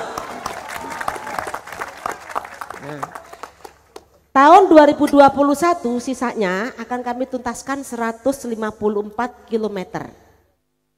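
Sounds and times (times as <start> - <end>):
audience at a speech clapping: 0.0 - 4.2
speech: 2.8 - 3.3, 4.4 - 10.2.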